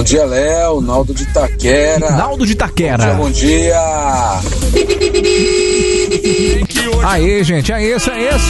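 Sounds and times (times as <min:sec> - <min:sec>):
speech: 0:00.0 - 0:08.4
truck horn honks over a tinny phone line: 0:04.6 - 0:07.1, 0:07.9 - 0:08.4.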